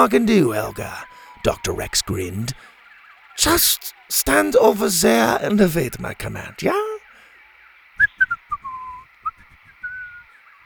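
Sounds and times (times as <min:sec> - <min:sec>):
speech: 0:00.0 - 0:02.7, 0:03.4 - 0:07.0
man whistling a cheerful tune to himself: 0:08.0 - 0:10.3.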